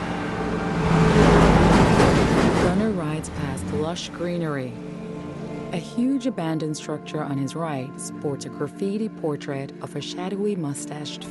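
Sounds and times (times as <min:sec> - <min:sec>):
truck hauling a load of timber driving past on a bridge: 0:00.0 - 0:05.4
speech: 0:04.0 - 0:04.8, 0:05.7 - 0:11.2.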